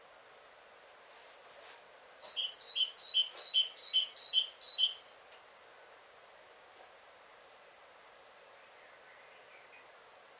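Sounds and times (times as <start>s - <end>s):
great tit Parus major calling with buzzy harsh notes: 2.2s - 5.1s.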